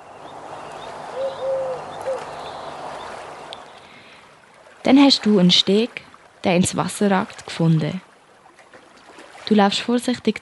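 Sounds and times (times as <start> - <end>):
eagle owl hooting in the distance: 1.1 - 2.4
speech: 4.9 - 8.1, 9.5 - 10.4.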